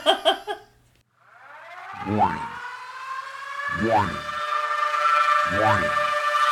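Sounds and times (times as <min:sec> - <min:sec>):
laughter: 0:00.0 - 0:00.6
sustained building tone: 0:01.2 - 0:06.5
synthetic warning siren wail rising in pitch: 0:01.2 - 0:06.5
voice-like burst: 0:01.9 - 0:02.6, 0:03.7 - 0:04.4, 0:05.4 - 0:06.1.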